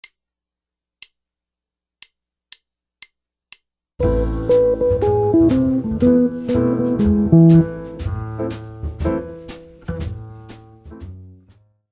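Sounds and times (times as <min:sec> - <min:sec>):
guitar playing melodic minor licks: 0:04.0 - 0:08.5.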